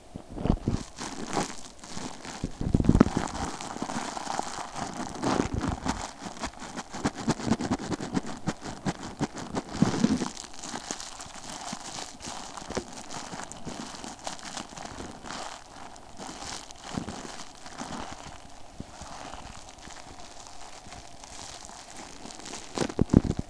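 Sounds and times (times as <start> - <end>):
foil wrap crinkling: 0.2 - 23.4.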